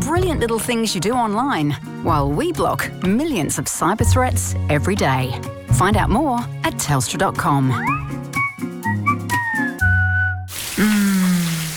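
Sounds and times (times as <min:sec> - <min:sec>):
speech: 0:00.1 - 0:08.3
person whistling a short tune: 0:07.8 - 0:11.5
shower water gushing with a steady hiss: 0:10.5 - 0:11.7.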